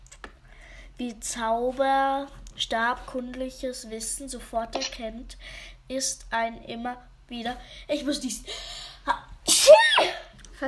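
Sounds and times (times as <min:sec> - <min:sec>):
speech: 0:01.0 - 0:09.2
person sneezing loudly: 0:09.5 - 0:10.3.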